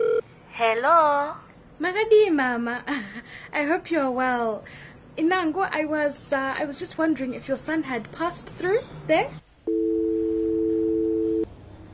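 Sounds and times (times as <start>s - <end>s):
steady electronic phone tone after a call is hung up: 0.0s - 0.2s, 9.7s - 11.5s
speech: 0.6s - 9.9s.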